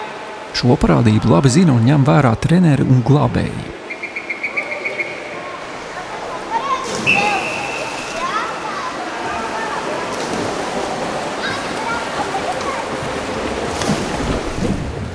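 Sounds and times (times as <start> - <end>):
speech: 0.6 - 3.8
water splashing and churning in a large indoor swimming pool: 5.1 - 15.1.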